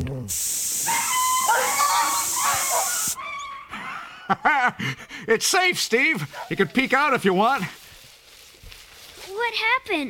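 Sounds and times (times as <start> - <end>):
steady hiss: 0.0 - 3.2, 5.0 - 9.6
speech: 0.2 - 0.6, 4.3 - 7.8, 9.4 - 10.0
dogs whining and yipping: 0.9 - 3.9.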